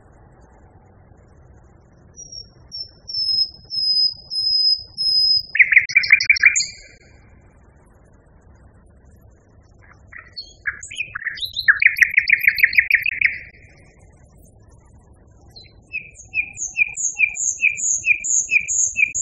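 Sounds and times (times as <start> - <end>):
common nightingale song: 1.6 - 7.6, 9.3 - 19.2.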